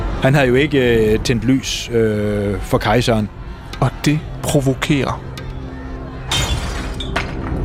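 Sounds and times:
speech: 0.2s - 5.3s
glass window panes smashed by stones: 6.3s - 7.5s.

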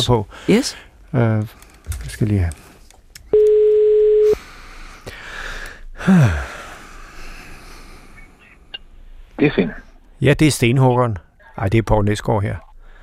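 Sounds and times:
speech: 0.0s - 2.6s, 6.0s - 6.5s, 9.4s - 12.7s
telephone ringback tone on an outgoing call: 3.4s - 4.4s
brief breathy falling vocal sound: 6.0s - 7.6s.

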